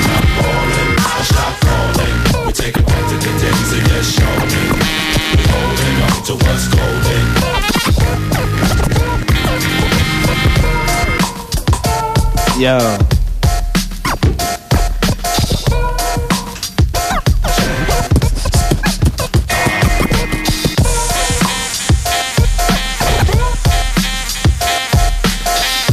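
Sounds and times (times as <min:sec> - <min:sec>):
dense steady hip-hop beat: 0:00.0 - 0:25.9
loud DJ scratching on turntables: 0:00.0 - 0:25.9
speech: 0:12.6 - 0:13.0.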